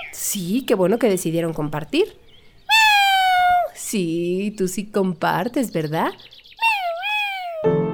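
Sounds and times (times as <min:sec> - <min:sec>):
speech: 0:00.3 - 0:02.2, 0:03.9 - 0:06.4
kitten meowing: 0:02.7 - 0:03.8, 0:06.6 - 0:07.8.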